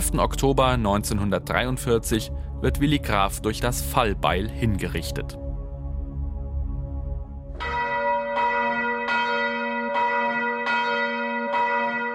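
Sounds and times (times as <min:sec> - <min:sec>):
low rumbling background: 0:00.0 - 0:09.1
speech: 0:00.1 - 0:05.4
church bell ringing: 0:07.6 - 0:12.1.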